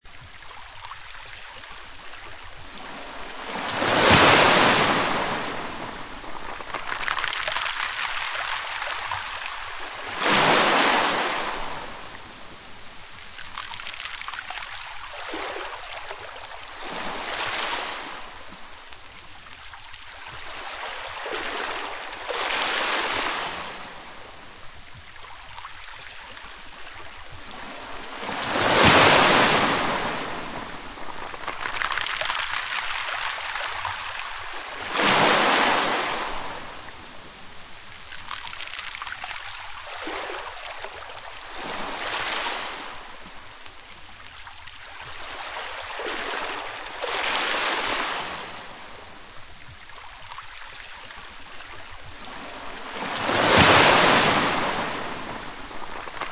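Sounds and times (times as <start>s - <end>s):
pebble shoreline: 0.0s - 56.3s.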